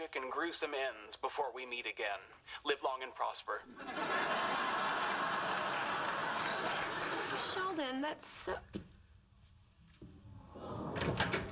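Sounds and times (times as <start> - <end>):
speech: 0.0 - 4.8, 7.8 - 8.8
laughter: 3.7 - 7.8
door opening with a soft thud: 10.0 - 11.5.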